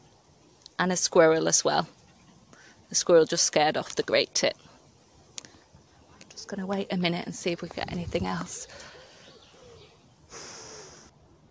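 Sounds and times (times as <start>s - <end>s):
speech: 0.8s - 2.0s, 2.9s - 4.7s, 6.5s - 8.9s
wood pigeon cooing near a garden bird feeder: 8.6s - 11.0s.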